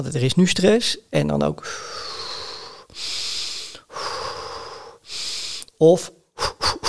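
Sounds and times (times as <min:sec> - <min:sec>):
speech: 0:00.0 - 0:02.1, 0:05.8 - 0:06.2
forceful rapid sniffing inhalations through the nose: 0:01.8 - 0:05.8, 0:06.4 - 0:06.8.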